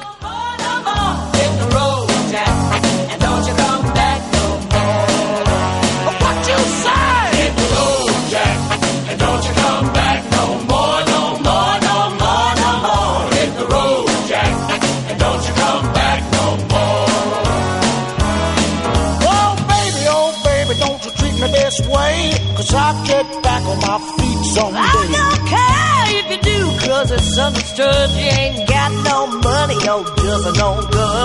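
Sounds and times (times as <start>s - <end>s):
sung vocals: 0.0s - 14.5s, 19.2s - 31.2s
classic rhythm and blues song: 0.0s - 31.2s
punchy band accompaniment: 0.0s - 31.2s
steady walking bass: 0.2s - 31.2s
speech: 27.4s - 31.2s.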